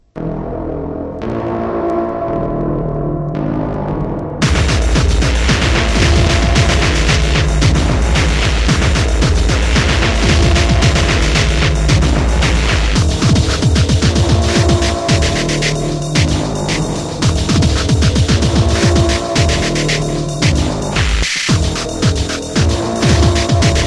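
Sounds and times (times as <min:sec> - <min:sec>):
basement ambience: 0:00.0 - 0:23.8.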